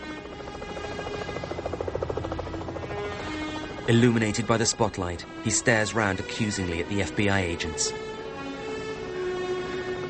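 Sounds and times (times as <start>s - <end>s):
helicopter droning overhead with thumping rotor and engine hum: 0.0s - 10.0s
speech: 3.9s - 8.1s.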